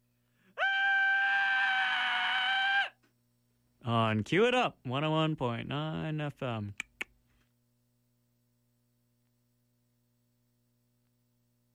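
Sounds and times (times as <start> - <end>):
high-pitched scream: 0.6 - 3.0
speech: 3.8 - 6.9.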